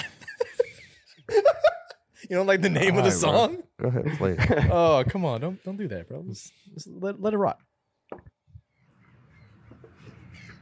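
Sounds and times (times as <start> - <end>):
laughter: 0.0 - 5.5
speech: 2.3 - 7.7
birds chirping and calling: 8.5 - 10.5.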